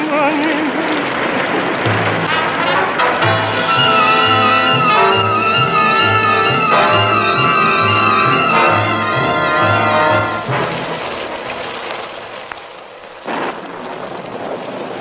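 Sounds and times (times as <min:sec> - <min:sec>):
gust of splashing: 0:00.0 - 0:14.9
heavy rain downpour: 0:00.0 - 0:14.9
brief melodic passage: 0:01.9 - 0:12.3.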